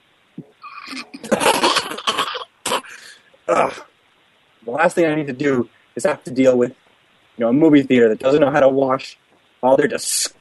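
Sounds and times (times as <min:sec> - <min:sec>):
person coughing harshly: 0:00.8 - 0:03.9
speech: 0:03.5 - 0:03.9, 0:04.6 - 0:06.8, 0:07.4 - 0:10.3.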